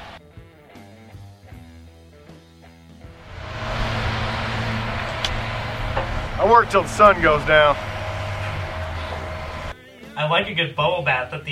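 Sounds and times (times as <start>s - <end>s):
tonal music: 3.2s - 9.7s
Toyota Prius hybrid car engine rumble: 3.2s - 9.8s
broad road hiss: 3.2s - 9.8s
speech: 6.5s - 7.9s, 10.2s - 11.5s.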